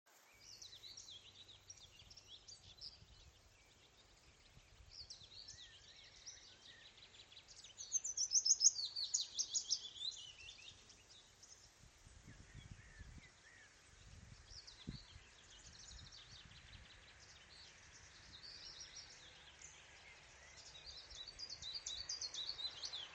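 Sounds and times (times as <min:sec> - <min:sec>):
willow warbler: 0:00.1 - 0:23.1.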